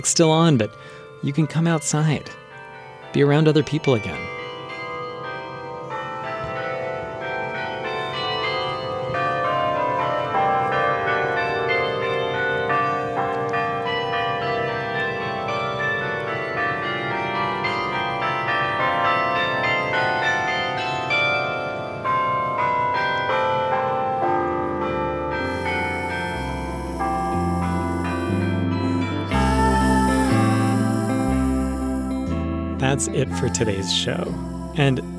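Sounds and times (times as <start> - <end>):
speech: 0.0 - 2.4, 3.1 - 4.4, 33.2 - 35.1
church bells pealing, rung by a person: 0.0 - 35.1.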